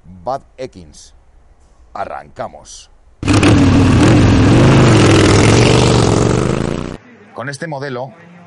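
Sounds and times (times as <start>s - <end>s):
speech: 0.2s - 1.2s, 2.0s - 2.9s, 7.4s - 8.3s
Triumph Bonneville T100 motorcycle engine starting and revving: 3.2s - 7.0s.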